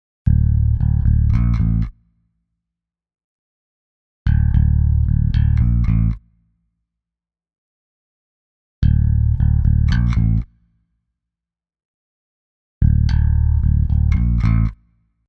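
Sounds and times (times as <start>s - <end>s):
processed bass: 0.3s - 1.9s, 4.3s - 6.2s, 8.8s - 10.5s, 12.8s - 14.8s.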